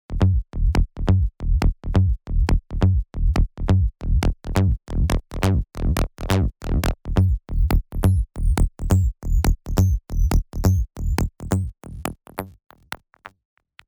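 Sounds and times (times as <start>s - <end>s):
bassline music: 0.1s - 12.6s.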